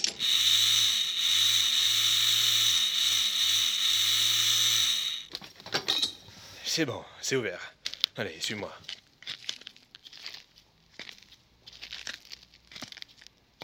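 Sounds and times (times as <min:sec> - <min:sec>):
power saw cutting through a metal grille: 0:00.0 - 0:05.3
speech: 0:06.8 - 0:08.9.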